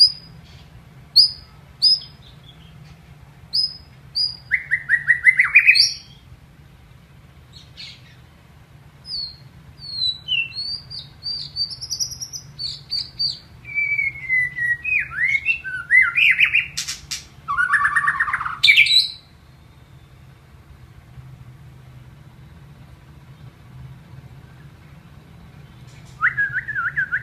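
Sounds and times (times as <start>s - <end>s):
white-rumped shama training song with rich whistles and buzzy bursts: 0.0s - 2.8s, 3.5s - 6.3s, 7.5s - 8.3s, 9.0s - 20.4s, 25.6s - 27.2s
low steady hum: 0.0s - 27.2s.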